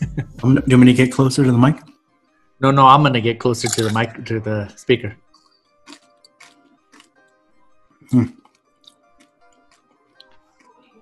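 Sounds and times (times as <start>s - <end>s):
laughter: 0.0s - 1.0s, 3.7s - 4.5s
speech: 0.4s - 1.9s, 2.6s - 5.2s, 8.1s - 8.4s
chewing a tortilla chip with salsa: 5.4s - 7.4s, 8.3s - 10.9s.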